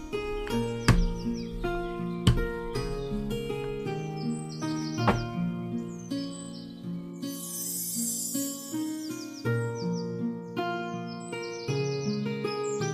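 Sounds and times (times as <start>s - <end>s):
sharp knocks: 0.0s - 4.1s, 5.0s - 5.5s
high bird chirps in a forest: 0.0s - 12.9s.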